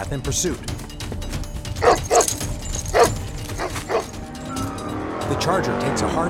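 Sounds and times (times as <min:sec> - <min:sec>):
speech: 0:00.0 - 0:00.9, 0:05.3 - 0:06.2
leashed dog barking while chasing someone: 0:01.8 - 0:04.2.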